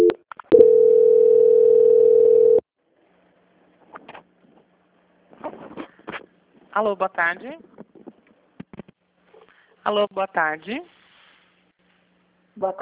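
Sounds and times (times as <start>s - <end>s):
telephone tone while a call is transferred: 0.0s - 2.6s
speech: 6.8s - 7.8s, 9.8s - 11.0s, 12.6s - 12.7s.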